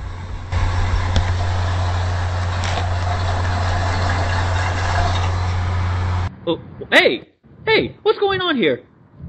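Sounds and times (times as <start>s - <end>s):
car engine running with loud low rumble: 0.0s - 6.3s
speech: 6.5s - 8.9s.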